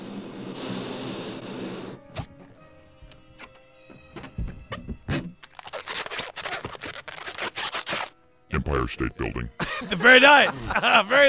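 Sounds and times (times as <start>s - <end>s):
latex balloon animal squeaking while being twisted: 4.7s - 8.2s
rubbing against the latex: 5.1s - 8.2s
laughter: 8.5s - 11.2s
speech: 8.8s - 11.2s.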